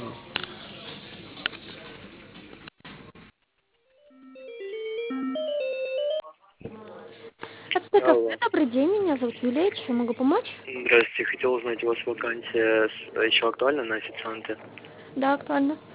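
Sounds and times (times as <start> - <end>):
telephone ringing tone while a call is transferred to another line: 4.0 - 6.3
speech: 7.9 - 15.9.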